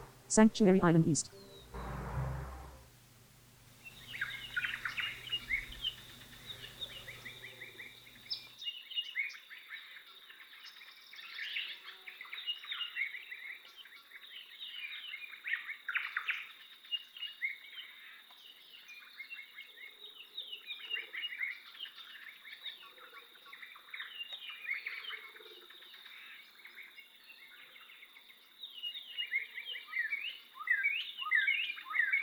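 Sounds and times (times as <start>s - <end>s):
speech: 0.3s - 1.5s
chorus of bird calls and chirps in an island soundscape: 1.3s - 1.9s, 3.8s - 32.2s
low rumble: 1.3s - 3.0s.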